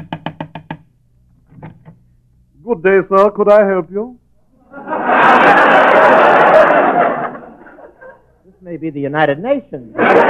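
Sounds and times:
knocking on a door: 0.0 - 0.9
speech: 2.7 - 4.2, 8.7 - 10.2
laughter: 4.6 - 8.4, 9.9 - 10.2.

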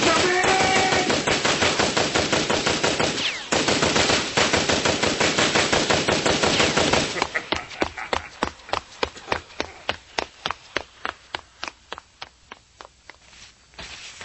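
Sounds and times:
Tommy gun firing long rapid automatic bursts: 0.0 - 7.3
laughter: 7.0 - 9.9.

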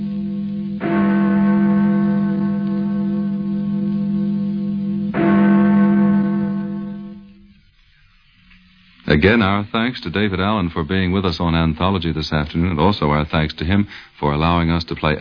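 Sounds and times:
church bell tolling: 0.0 - 7.4
speech: 9.2 - 15.1.

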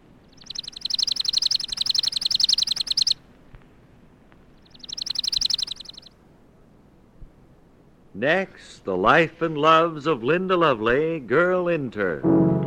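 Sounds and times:
chipping sparrow singing dry rapid trills of high chips: 0.1 - 3.2, 4.6 - 6.1
speech: 8.2 - 12.5.

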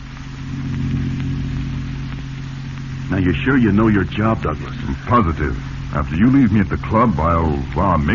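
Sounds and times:
car engine humming as the vehicle drives along: 0.0 - 8.1
speech: 3.1 - 8.1.

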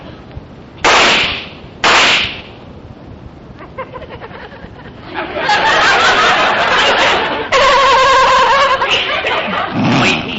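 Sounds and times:
gun being fired inside a warehouse: 0.8 - 2.5
laughter: 3.6 - 10.3.

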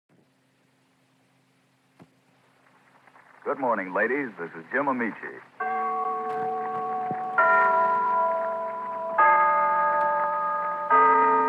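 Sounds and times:
speech: 3.4 - 5.6
town hall clock chiming: 5.6 - 11.4.

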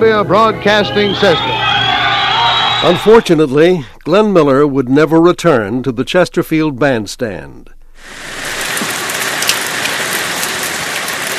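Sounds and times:
speech: 0.0 - 1.7, 2.8 - 8.4
steady rain: 8.0 - 11.3.

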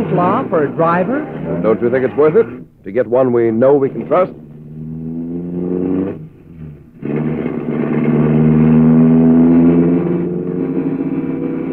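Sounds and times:
car engine revving and accelerating through streets: 0.0 - 11.7
speech: 0.1 - 4.4.

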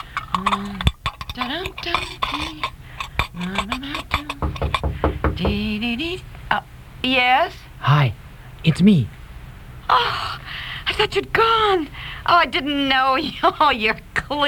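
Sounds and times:
cooking dishes and pots clattering while washed up: 0.0 - 5.8
speech: 0.4 - 0.8, 1.4 - 2.8, 3.4 - 4.4, 5.4 - 9.2, 9.9 - 14.4.

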